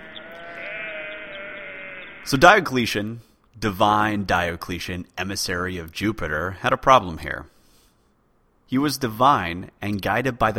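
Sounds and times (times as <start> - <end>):
sheep bleating: 0.0 - 2.8
speech: 2.2 - 7.5, 8.7 - 10.5.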